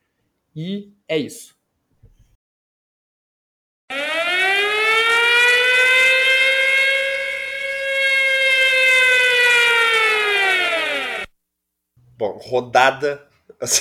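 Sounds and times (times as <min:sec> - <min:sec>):
speech: 0:00.6 - 0:01.6, 0:12.2 - 0:13.8
loud siren sound effect used as a spoiler warning: 0:03.9 - 0:11.3.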